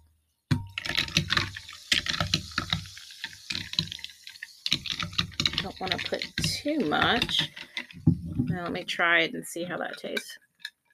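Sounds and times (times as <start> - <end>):
liquid from a newly opened bottle poured into a glass of seltzer water: 0.7 - 8.4
speech: 5.8 - 7.6, 8.5 - 10.4.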